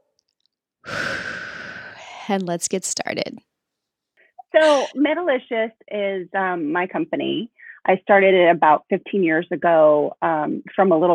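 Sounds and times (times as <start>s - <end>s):
deep breath taken before a guided session: 0.8s - 2.2s
speech: 2.3s - 3.5s, 4.5s - 11.1s.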